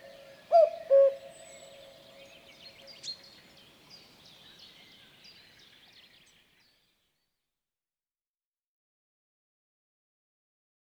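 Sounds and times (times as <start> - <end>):
common cuckoo two-note cu-coo call: 0.0 - 2.4.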